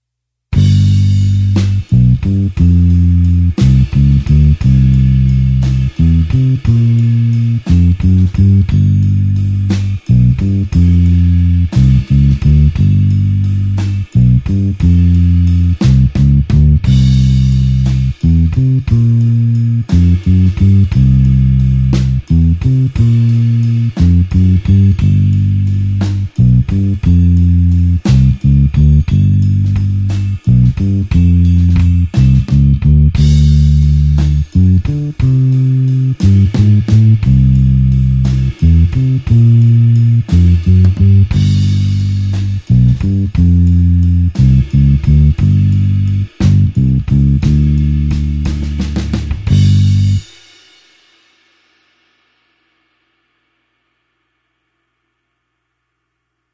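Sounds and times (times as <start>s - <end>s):
slow blues bassline in G: 0.6s - 50.4s.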